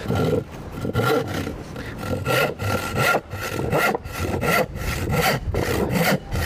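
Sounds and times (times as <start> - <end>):
hand saw making a rip cut through a 3/4 inch MDF sheet: 0.0 - 6.4.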